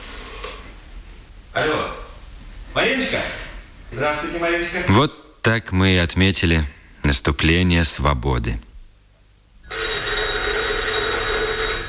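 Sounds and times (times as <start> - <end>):
speech: 1.6 - 2.0, 2.8 - 8.7
telephone electric bell ringing in a newspaper office: 9.6 - 11.8.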